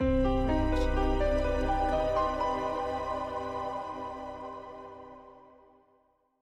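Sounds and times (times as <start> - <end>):
mystery ident music: 0.0 - 5.3.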